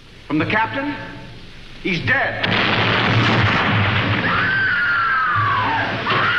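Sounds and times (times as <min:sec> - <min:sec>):
speech: 0:00.3 - 0:03.4
loud roaring explosion aboard an upside-down ship flooding with water: 0:02.4 - 0:06.3.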